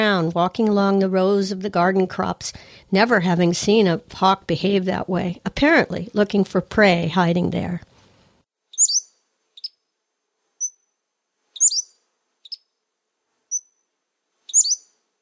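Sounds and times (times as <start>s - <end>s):
speech: 0.0s - 7.9s
Pacific-slope flycatcher calling: 8.8s - 9.8s, 11.6s - 12.6s, 14.5s - 14.9s.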